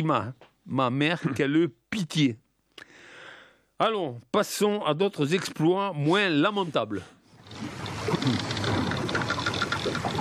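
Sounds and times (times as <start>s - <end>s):
speech: 0.0s - 2.9s, 3.8s - 8.6s
steady wash of water: 7.4s - 10.1s
wooden timbers of Spanish ships' hulls creaking: 7.4s - 10.1s.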